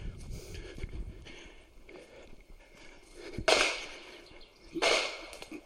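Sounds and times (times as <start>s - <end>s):
gunshots at a busy shooting range: 3.5s - 3.9s, 4.7s - 5.5s.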